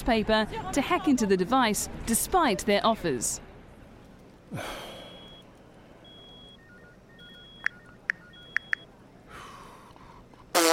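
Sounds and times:
speech: 0:00.0 - 0:03.5, 0:04.5 - 0:04.9
breathy sigh: 0:04.5 - 0:05.3
mobile phone notification beeps: 0:06.1 - 0:08.8.

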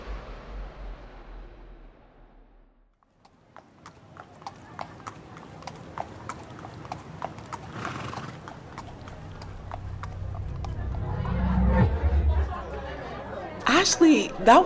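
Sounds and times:
horse hooves clip-clopping at a walking pace during a ride: 0:03.0 - 0:10.7
faint voices chattering: 0:03.6 - 0:14.6
speech: 0:13.9 - 0:14.6.

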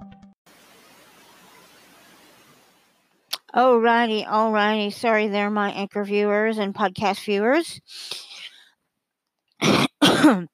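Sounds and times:
speech: 0:03.6 - 0:08.2, 0:10.3 - 0:10.5
person coughing and clearing throat: 0:09.6 - 0:10.5.

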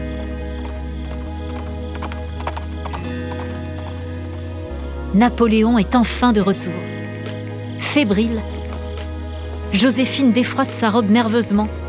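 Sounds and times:
hooves of a galloping light grey Arabian thoroughbred along a countryside drive: 0:00.0 - 0:04.8
speech: 0:05.1 - 0:06.9, 0:07.9 - 0:08.6, 0:09.7 - 0:11.8.

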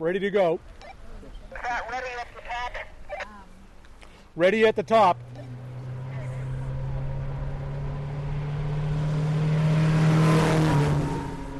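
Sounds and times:
speech: 0:00.0 - 0:00.9, 0:04.4 - 0:05.3
car engine droning while climbing a hill during a timed hill-climb run: 0:02.9 - 0:11.5.

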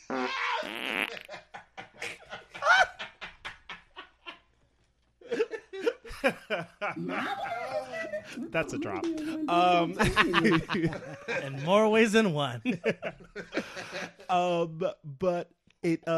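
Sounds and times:
fart: 0:00.0 - 0:01.3
speech: 0:00.1 - 0:01.4, 0:06.2 - 0:16.1
people laughing: 0:00.4 - 0:04.4, 0:05.2 - 0:14.6.

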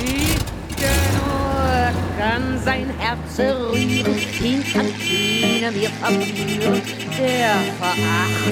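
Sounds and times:
staff car engine accelerating through the gears: 0:00.0 - 0:08.5.

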